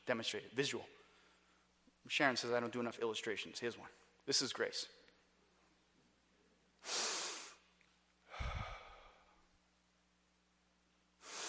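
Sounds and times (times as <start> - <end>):
speech: 0.1 - 1.0, 2.0 - 5.0
person taking loud breathy breaths: 6.8 - 7.6, 8.2 - 9.5, 11.2 - 11.4.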